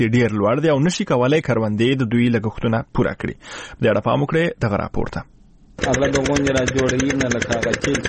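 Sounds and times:
speech: 0:00.0 - 0:08.0
diesel generator engine pumping deep-well water to irrigate wheat in Dand district, Kandahar: 0:05.8 - 0:08.0.

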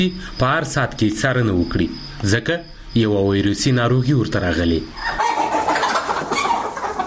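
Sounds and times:
speech: 0:00.0 - 0:05.2
chickens clucking on a small family chicken farm in Uruzgan province: 0:03.0 - 0:07.0.

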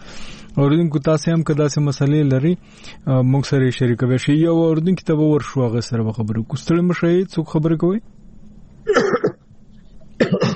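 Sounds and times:
speech: 0:00.6 - 0:08.2, 0:08.9 - 0:09.2
hoarse coughs from a caller on a phone line: 0:08.9 - 0:09.4, 0:10.2 - 0:10.5.

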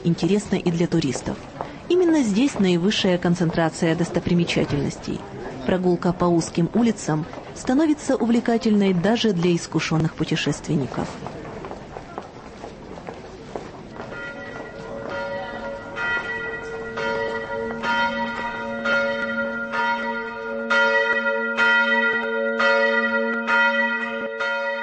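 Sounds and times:
speech: 0:00.0 - 0:11.4
faint footsteps or street sounds: 0:00.0 - 0:24.8
church bells of a 16th-century church in Bratislava ringing: 0:14.0 - 0:24.8.

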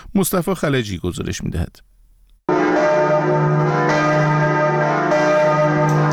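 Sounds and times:
speech: 0:00.2 - 0:01.9
large cathedral church bells ringing: 0:02.5 - 0:06.1.

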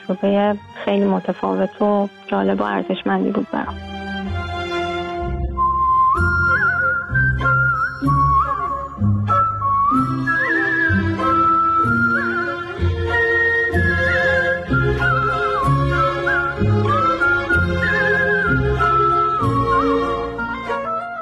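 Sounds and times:
full orchestral backing: 0:00.0 - 0:21.2
speech: 0:00.1 - 0:03.9
solo whistled melody: 0:05.2 - 0:21.2.

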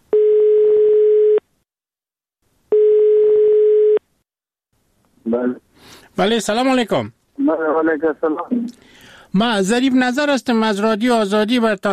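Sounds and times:
telephone line tone while placing a call: 0:00.1 - 0:01.4, 0:02.7 - 0:04.0
speech: 0:05.3 - 0:05.6, 0:06.2 - 0:11.9.

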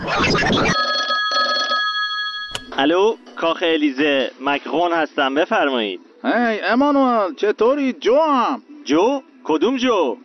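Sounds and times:
telephone ringing with an electronic trilling tone: 0:00.6 - 0:02.9
speech: 0:02.8 - 0:10.2.

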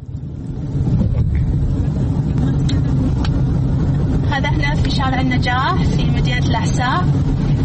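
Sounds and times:
car engine rumble inside a moving car: 0:00.0 - 0:07.6
road noise inside a moving car: 0:00.0 - 0:07.6.

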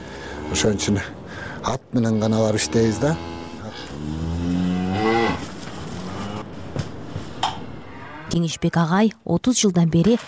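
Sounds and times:
cow mooing on a rural village homestead in winter: 0:00.3 - 0:01.1, 0:02.1 - 0:06.5, 0:07.6 - 0:08.6
speech: 0:00.5 - 0:04.6, 0:08.4 - 0:10.2.

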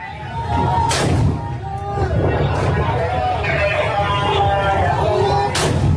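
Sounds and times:
voices and crowd noise: 0:00.0 - 0:05.9
street gunfire during fighting in Hodeidah, Yemen: 0:00.8 - 0:01.5, 0:05.5 - 0:05.9.

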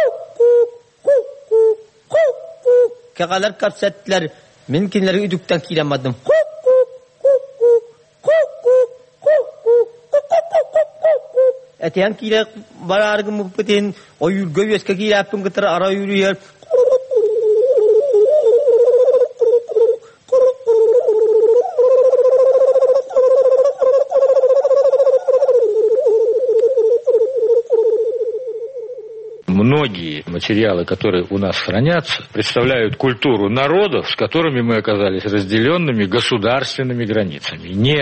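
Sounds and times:
singer performing a Yakut hunter's song imitating bird calls: 0:00.0 - 0:03.2, 0:06.2 - 0:12.9, 0:16.6 - 0:29.5
speech: 0:03.2 - 0:06.3, 0:11.9 - 0:16.6, 0:29.8 - 0:38.0.

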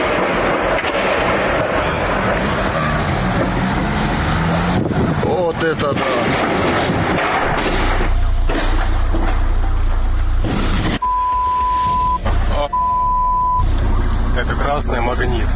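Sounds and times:
car pulling out with a loud rough engine roar: 0:00.0 - 0:15.5
speech: 0:05.6 - 0:06.3
long steady high beeps: 0:11.0 - 0:13.6.

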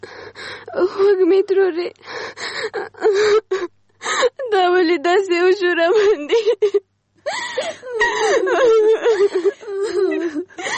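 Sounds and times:
speech: 0:00.8 - 0:03.7, 0:04.5 - 0:09.5
person crying and whimpering: 0:02.4 - 0:04.5, 0:06.0 - 0:10.7.

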